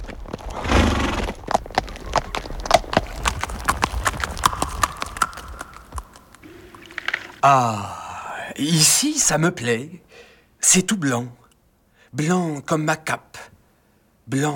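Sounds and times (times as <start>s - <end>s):
horse hooves clip-clopping while galloping: 0.0s - 7.4s
speech: 7.4s - 8.0s, 8.6s - 11.4s, 12.1s - 13.5s, 14.3s - 14.5s.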